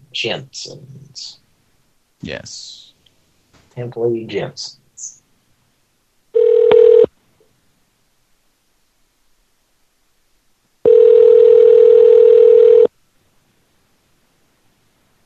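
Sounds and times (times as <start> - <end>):
speech: 0.2 - 1.4, 2.2 - 2.9, 3.8 - 5.2
telephone ringback tones as a call rings through toward voicemail: 6.4 - 7.1, 10.8 - 12.9.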